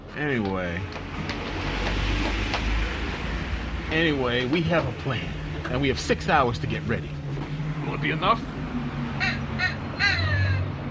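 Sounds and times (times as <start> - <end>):
speech: 0.2 - 1.4, 3.9 - 7.2, 7.9 - 8.6
low rumbling hum: 0.8 - 10.8
crow cawing harshly: 9.1 - 10.7.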